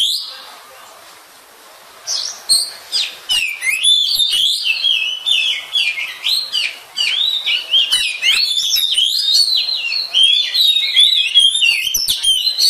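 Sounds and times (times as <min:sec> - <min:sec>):
Oriental magpie-robin song of fast jumbled whistles chirps and clicks: 0:02.1 - 0:12.6.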